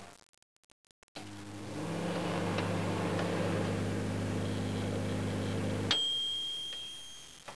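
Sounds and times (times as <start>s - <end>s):
microwave oven: 1.2s - 6.9s.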